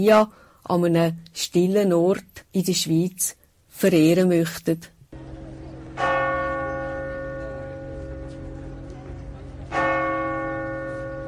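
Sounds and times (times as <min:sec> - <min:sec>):
speech: 0:00.0 - 0:04.9
resonant church bell strikes: 0:05.2 - 0:11.2.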